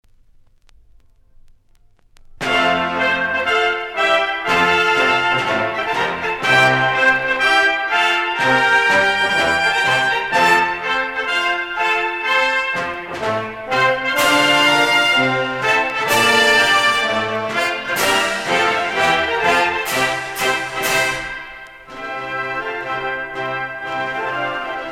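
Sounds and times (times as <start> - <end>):
military march music: 2.4 - 24.9.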